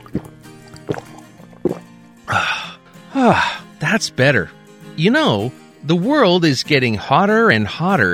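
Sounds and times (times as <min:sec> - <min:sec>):
gulping glugs of water being drunk: 0:00.0 - 0:02.0
speech: 0:03.2 - 0:08.1.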